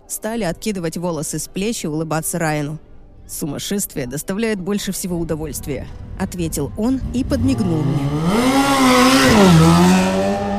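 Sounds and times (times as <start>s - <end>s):
speech: 0.1s - 10.1s
car engine roaring as the car speeds away: 5.4s - 10.5s.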